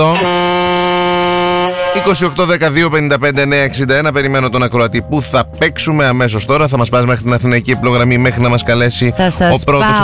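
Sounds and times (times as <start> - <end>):
speech: 0.0 - 0.5, 2.0 - 10.0
horn sound effect blaring: 0.0 - 3.1.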